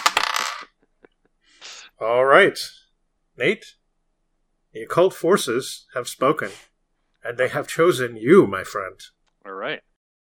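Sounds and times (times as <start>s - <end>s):
six-sided die rolling on a hard surface: 0.0s - 0.7s
speech: 2.0s - 2.8s, 3.4s - 3.8s, 4.7s - 9.9s.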